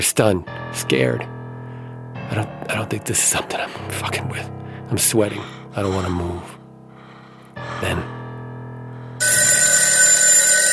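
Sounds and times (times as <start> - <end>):
speech: 0.0 - 1.4, 2.3 - 6.6, 7.6 - 8.2
telephone ringing with a bright continuous electric bell tone: 9.2 - 10.7.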